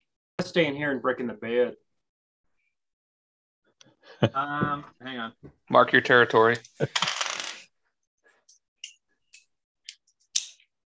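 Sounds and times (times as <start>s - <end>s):
speech: 0.4s - 1.8s, 4.2s - 7.2s
dice dropped and rattling on a surface: 6.9s - 7.6s.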